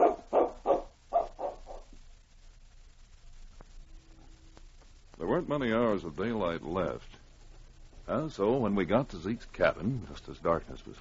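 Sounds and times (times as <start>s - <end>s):
dog barking: 0.0s - 2.0s
speech: 5.4s - 7.2s, 8.1s - 10.9s.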